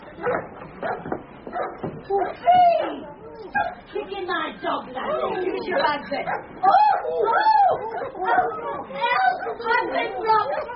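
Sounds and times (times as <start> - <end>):
dog barking and yelping in agitated bursts: 0.2 - 2.4, 3.5 - 3.8, 6.3 - 9.8
speech: 3.5 - 10.7.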